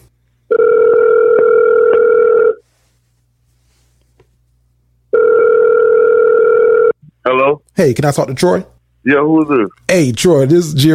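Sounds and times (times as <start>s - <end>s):
long electronic ringback tones of an outgoing phone call: 0.5s - 2.6s, 5.1s - 7.0s
speech: 7.8s - 10.9s.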